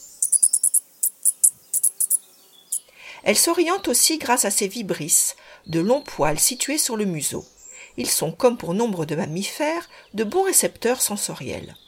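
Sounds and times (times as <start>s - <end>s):
shrew squeaking while moving about in search of food: 0.0s - 2.8s
speech: 3.2s - 11.8s.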